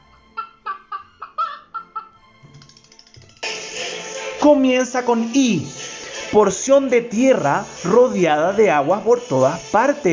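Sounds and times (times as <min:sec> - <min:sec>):
hen clucking: 0:00.0 - 0:02.2
hen muttering softly: 0:00.0 - 0:02.9
speech: 0:04.4 - 0:10.1.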